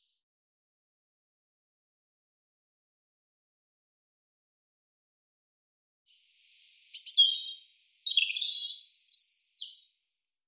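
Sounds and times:
European robin song: 6.1 - 10.4.

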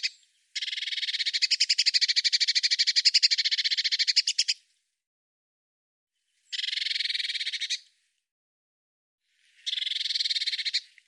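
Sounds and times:
Eurasian blue tit giving harsh buzzy churr calls: 0.0 - 4.6, 6.5 - 7.8, 9.6 - 10.9.

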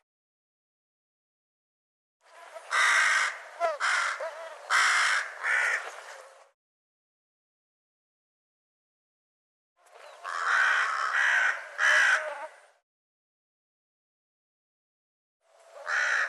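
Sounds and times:
bird cawing: 2.6 - 6.0, 10.2 - 12.6, 15.8 - 16.2.

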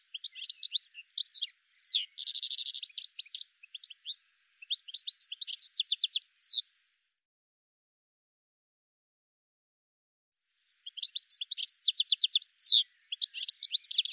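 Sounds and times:
high sharp bird chirps: 0.2 - 6.6, 10.8 - 14.1.

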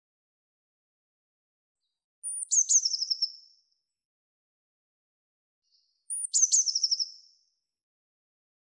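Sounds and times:
Eurasian blue tit calling with a piercing note and buzzy trill: 2.2 - 3.4, 6.1 - 7.2.

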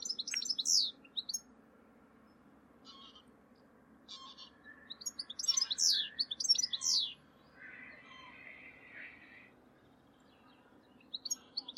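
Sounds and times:
bird calls and chirps: 0.0 - 1.5, 2.2 - 11.7.

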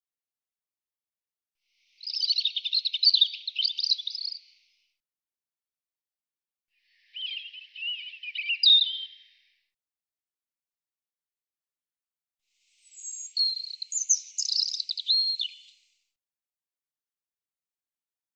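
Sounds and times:
European robin singing: 2.0 - 4.5, 7.0 - 9.5, 12.8 - 15.8.

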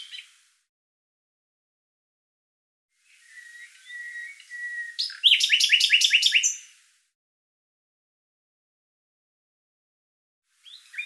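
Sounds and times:
bright repeated bird chirps: 0.0 - 0.4, 3.1 - 6.8, 10.6 - 11.0
bird whistling: 3.1 - 6.7.

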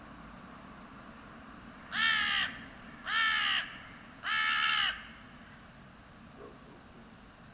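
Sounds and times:
faint steady background hum: 0.0 - 7.5
bird calling hoarse caws: 1.8 - 5.7.

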